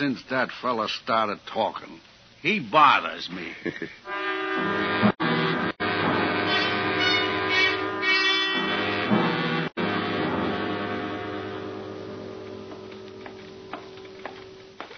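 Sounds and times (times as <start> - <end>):
speech: 0.0 - 5.0
loud sustained train horn blaring: 4.0 - 14.1.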